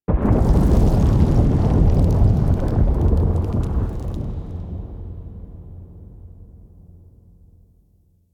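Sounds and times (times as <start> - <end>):
earthquake ambience: 0.1 - 6.1.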